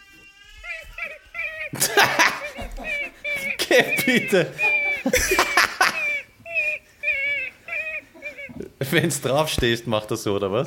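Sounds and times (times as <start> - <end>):
raccoon call chirps: 0.6 - 8.7
laughter: 1.0 - 9.3
speech: 1.7 - 2.2, 3.8 - 5.7, 8.9 - 10.6.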